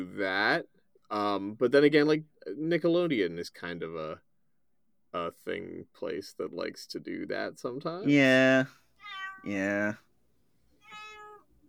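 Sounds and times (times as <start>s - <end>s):
speech: 0.1s - 4.3s, 5.1s - 8.8s, 9.4s - 10.1s
cat meowing loudly at the door: 9.0s - 10.0s, 10.8s - 11.5s.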